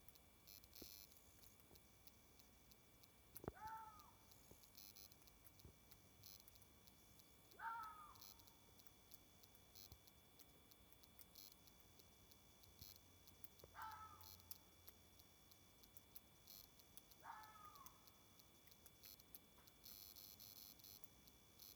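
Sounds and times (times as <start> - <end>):
faint steady hiss: 0.0 - 21.7
quiet downward-sliding harmonic bird calls: 7.6 - 8.3, 17.4 - 18.0.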